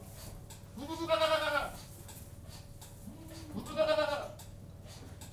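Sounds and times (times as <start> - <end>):
domestic goat bleating in a goat-house: 0.7 - 1.9, 3.1 - 4.4.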